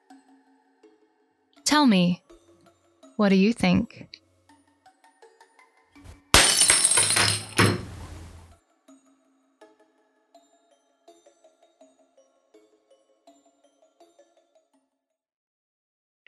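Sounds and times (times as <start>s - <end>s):
speech: 1.8s - 2.2s, 3.2s - 4.2s
small scattered glass shards tinkling and settling: 6.1s - 8.5s
glass shattering: 6.1s - 8.6s.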